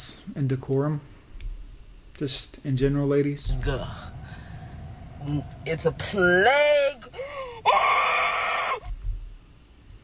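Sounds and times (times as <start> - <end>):
speech: 0.0 - 1.2, 2.2 - 4.2, 5.2 - 7.8
brief low thud: 3.4 - 7.7
person screaming: 6.8 - 8.9.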